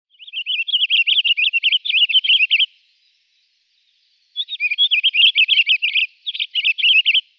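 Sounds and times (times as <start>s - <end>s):
Pinicola enucleator calling: 0.1s - 2.7s, 4.3s - 7.3s.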